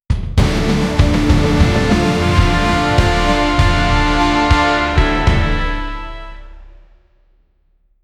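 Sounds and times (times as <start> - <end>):
epic fantasy videogame music: 0.4 - 6.5.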